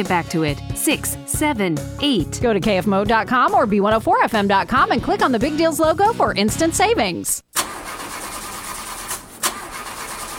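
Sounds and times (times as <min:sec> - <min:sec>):
speech: 0:00.0 - 0:07.5
car engine cranking without starting: 0:07.5 - 0:10.3.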